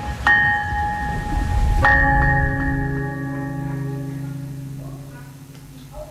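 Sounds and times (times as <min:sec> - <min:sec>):
experimentally cast iron bell struck and ringing: 0:00.3 - 0:06.0
low rumble: 0:00.7 - 0:06.0.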